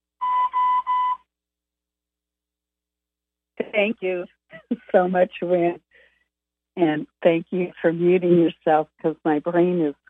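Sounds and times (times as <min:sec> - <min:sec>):
bright slightly buzzy electronic beeps on a group call: 0:00.2 - 0:01.2
speech: 0:03.8 - 0:05.8, 0:06.8 - 0:10.0.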